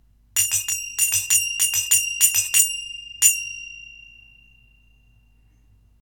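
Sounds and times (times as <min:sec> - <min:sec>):
basic silver zils: 0:00.4 - 0:05.2.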